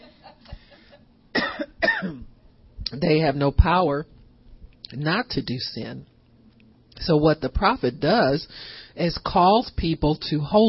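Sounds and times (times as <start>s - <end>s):
person coughing into a microphone: 1.3s - 2.3s
speech: 2.9s - 4.2s, 4.9s - 6.1s, 7.0s - 10.6s.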